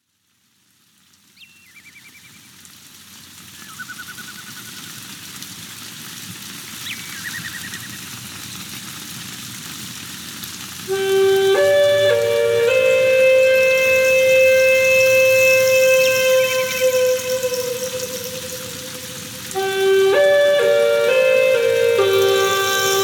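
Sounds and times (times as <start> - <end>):
native flute playing: 10.9 - 23.0.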